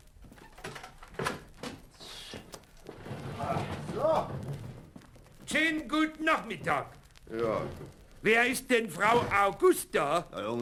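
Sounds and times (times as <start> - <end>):
castle door scraping open: 0.3 - 5.0
speech: 5.6 - 10.5.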